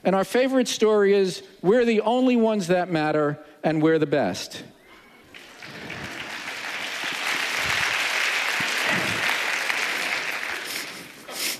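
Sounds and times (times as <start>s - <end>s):
speech: 0.0s - 4.7s
audience clapping in a room full of people: 5.2s - 11.5s.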